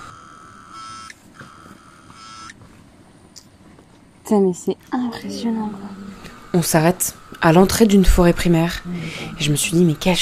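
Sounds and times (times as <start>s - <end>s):
cicadas buzzing in a shrill electric drone: 0.0s - 2.6s, 5.7s - 10.2s
speech: 4.3s - 10.2s.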